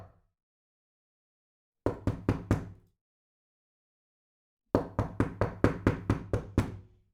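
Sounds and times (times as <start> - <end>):
knocking on a wooden bedroom door indoors: 1.9 - 2.8, 4.8 - 7.0.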